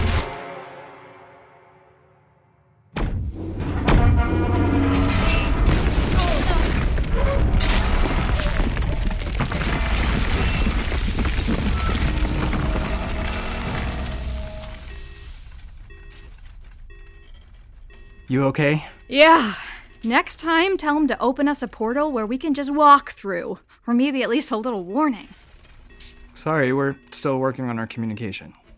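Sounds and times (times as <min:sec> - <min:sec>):
tonal hum of a spaceship: 0:00.0 - 0:06.2, 0:11.6 - 0:16.0
crashing clattering impacts of a spaceship crash-landing: 0:03.0 - 0:17.9
speech: 0:18.3 - 0:25.4, 0:26.4 - 0:28.6.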